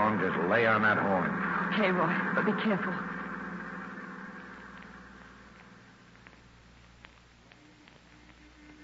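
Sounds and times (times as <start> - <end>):
car engine running outside a hotel: 0.0 - 6.7
speech: 0.2 - 3.2.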